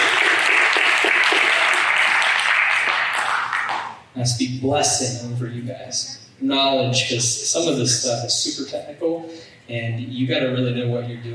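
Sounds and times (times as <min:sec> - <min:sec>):
audience applause: 0:00.0 - 0:04.0
speech: 0:04.2 - 0:11.3.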